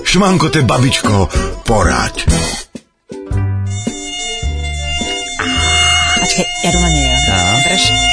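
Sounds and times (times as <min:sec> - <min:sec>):
speech: 0:00.1 - 0:02.6, 0:06.3 - 0:08.1
mosquito whining near the ear: 0:03.7 - 0:08.1.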